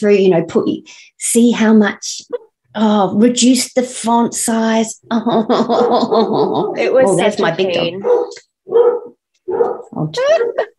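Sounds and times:
speech: 0.0 - 10.7
laughter: 5.1 - 8.0
dogs barking at home: 8.0 - 10.0.

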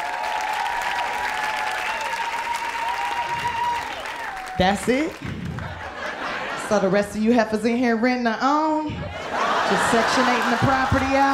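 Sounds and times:
audience clapping at a live comedy show: 0.0 - 6.6, 9.5 - 11.3
speech: 4.6 - 5.5, 6.7 - 11.3
laughter: 4.6 - 7.5, 8.9 - 11.3.

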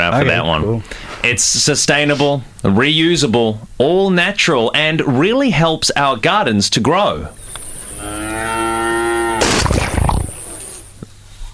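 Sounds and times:
speech: 0.1 - 7.4
cow mooing: 7.8 - 10.8
rough noisy burst: 9.4 - 10.9.

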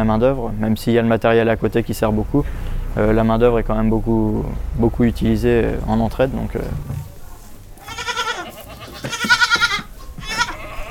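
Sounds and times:
speech: 0.0 - 7.1
busy background on a goat farm with a cheese dairy: 0.0 - 10.8
young goat kids bleating on a goat farm: 7.8 - 10.8.

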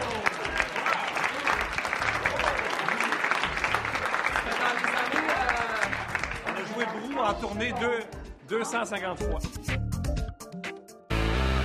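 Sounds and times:
dense audience applause: 0.0 - 7.5
speech: 7.3 - 9.8.

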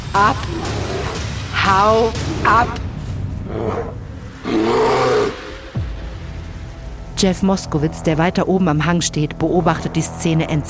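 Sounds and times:
speech: 0.1 - 0.7, 1.7 - 2.8, 3.6 - 4.9, 7.2 - 10.6
bear roaring: 0.2 - 5.8.

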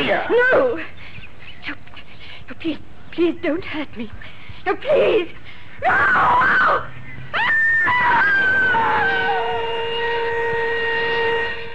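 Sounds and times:
speech: 0.0 - 1.0, 2.5 - 7.0, 7.8 - 10.2
woman screaming and crying for help: 5.8 - 11.7.

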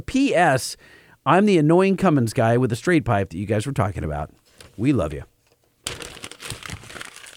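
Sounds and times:
speech: 0.0 - 5.3
printed email on paper being crumpled: 5.8 - 7.3.

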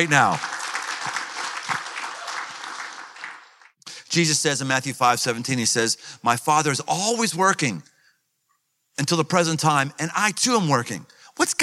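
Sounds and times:
speech: 0.0 - 0.5, 4.1 - 7.9, 9.0 - 11.6
audience applause from a group of men: 0.0 - 3.7.

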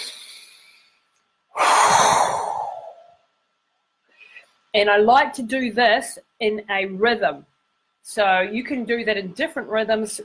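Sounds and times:
deep breath out through pursed lips: 1.6 - 3.2
speech: 4.7 - 10.2.

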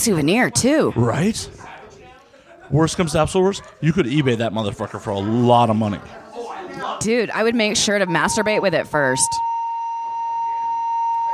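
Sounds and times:
speech: 0.0 - 1.7, 2.7 - 6.2, 6.8 - 9.5
hotel fire alarm blaring steady piercing electronic tone: 7.4 - 11.3.

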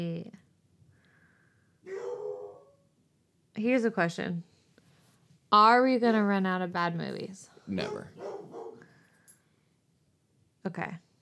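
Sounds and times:
dog barking: 1.8 - 2.8, 7.8 - 8.9
speech: 3.6 - 4.5, 5.5 - 8.6, 10.6 - 11.0.

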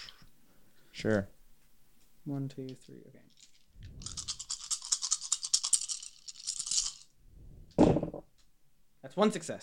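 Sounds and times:
speech: 1.0 - 1.4, 2.2 - 4.2, 9.0 - 9.6
dice rattling in a hand or cup: 3.3 - 7.1.

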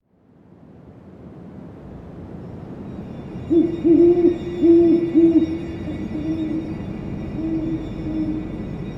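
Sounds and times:
great horned owl hooting: 3.4 - 8.8.

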